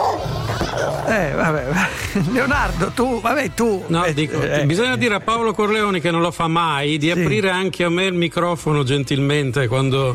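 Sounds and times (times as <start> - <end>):
big Rottweiler dog barking and growling: 0.0 - 1.6
speech: 1.0 - 10.1.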